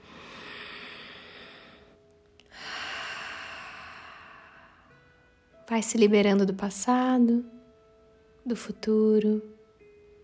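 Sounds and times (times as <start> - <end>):
person breathing deeply during a guided meditation: 0.0 - 5.1
speech: 5.7 - 7.6, 8.5 - 9.6.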